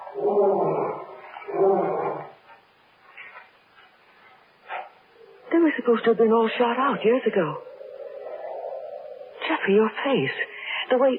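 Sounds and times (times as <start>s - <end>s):
lion roaring: 0.0s - 2.4s, 6.9s - 9.4s
speech: 5.6s - 7.7s, 9.6s - 11.1s.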